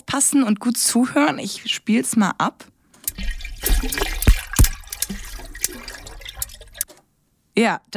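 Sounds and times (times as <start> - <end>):
speech: 0.2 - 4.2, 7.6 - 7.9
water noise: 3.0 - 7.0
shark crackling clicks: 4.2 - 5.8.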